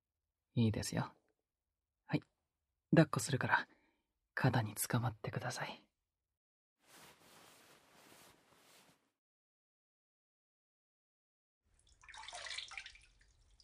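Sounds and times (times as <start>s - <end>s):
speech: 0.6s - 1.2s, 2.1s - 2.3s, 2.9s - 3.8s, 4.4s - 5.9s
bath water sloshing and splashing in a bubble bath in a tub: 11.8s - 13.6s.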